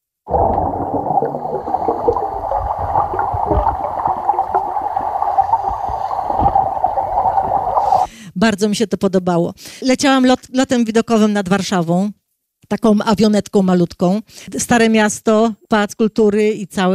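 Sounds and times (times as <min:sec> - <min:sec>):
underwater gurgling and bubbling while diving in a swimming pool: 0:00.3 - 0:08.1
speech: 0:08.4 - 0:16.9.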